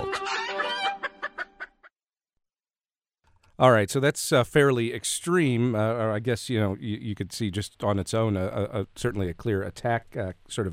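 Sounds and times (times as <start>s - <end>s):
chicken squawk: 0.0s - 1.9s
speech: 3.6s - 10.7s.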